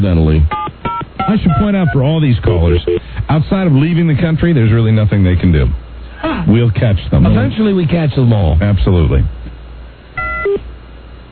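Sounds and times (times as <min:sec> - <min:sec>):
speech: 0:00.0 - 0:00.6, 0:01.3 - 0:09.4
fax machine tones on a telephone line: 0:00.5 - 0:03.2, 0:10.2 - 0:10.6.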